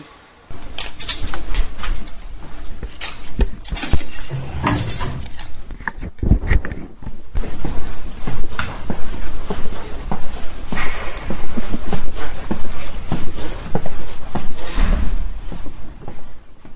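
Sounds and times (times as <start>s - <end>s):
footsteps along an indoor corridor: 0.5s - 16.7s
knocks and shuffles: 0.5s - 16.7s
heavy chip-operated security door clunking open into a radio building: 2.6s - 5.7s.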